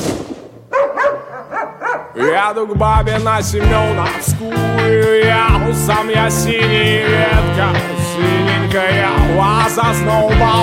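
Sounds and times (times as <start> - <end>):
dog barking with short yappy barks: 0.7 - 2.5
speech: 2.2 - 10.6.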